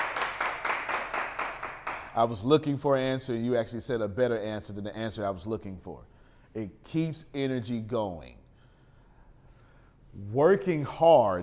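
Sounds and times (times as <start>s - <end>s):
audience clapping in a steady rhythm: 0.0s - 2.2s
speech: 2.2s - 8.4s, 10.2s - 11.4s.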